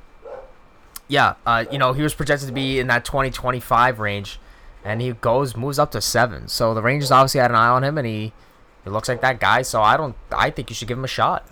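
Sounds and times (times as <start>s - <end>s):
dog bark from another room: 0.2s - 0.6s, 1.6s - 2.8s, 9.1s - 9.5s
speech: 1.1s - 11.5s.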